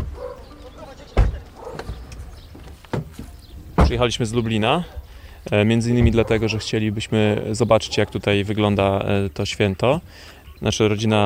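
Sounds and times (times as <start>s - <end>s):
low outdoor rumble of arriving vehicles: 0.0s - 11.2s
solid car door thud: 1.2s - 2.0s, 3.8s - 4.0s, 5.9s - 6.4s
speech: 3.9s - 11.2s.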